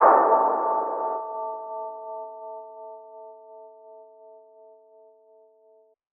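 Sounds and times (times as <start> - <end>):
hits: 0.0 - 3.0.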